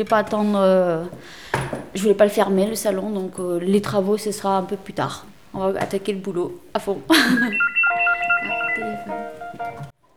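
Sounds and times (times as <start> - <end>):
speech: 0.0 - 7.7
electronic telephone ringtone in a hair salon: 7.4 - 9.9.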